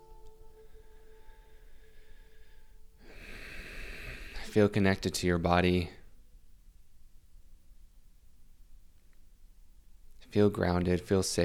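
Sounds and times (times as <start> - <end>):
deep breath during a guided relaxation exercise: 0.6 - 4.7
speech: 4.5 - 6.0, 10.3 - 11.4.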